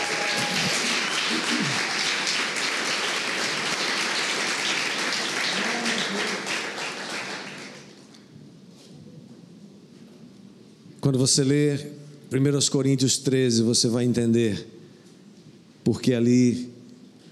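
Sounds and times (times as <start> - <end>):
large church audience applauding: 0.0 - 8.1
speech: 11.1 - 14.8, 15.9 - 16.7.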